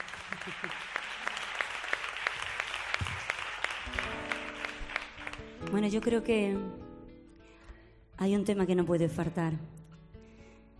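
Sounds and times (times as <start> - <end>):
audience applause: 0.0 - 5.6
speech: 5.7 - 6.8, 8.2 - 9.8.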